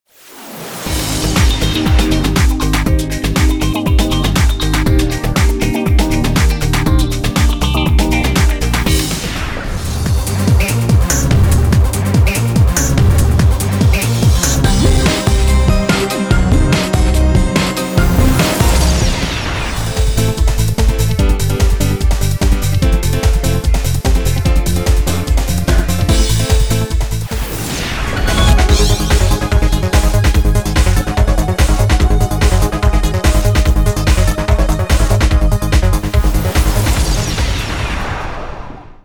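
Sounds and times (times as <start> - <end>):
dance music: 0.9 - 37.6.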